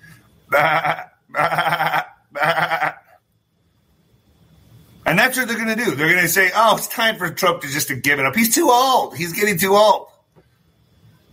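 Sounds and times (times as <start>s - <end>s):
speech: 0.5s - 1.1s, 5.3s - 10.0s
sheep bleating: 0.5s - 3.2s.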